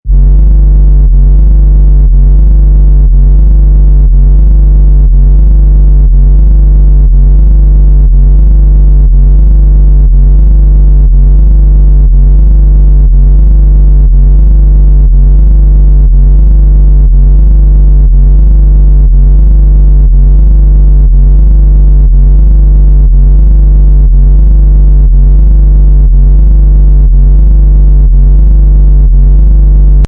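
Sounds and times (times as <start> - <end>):
deep creepy distorted engine bass sound: 0.0 - 30.0.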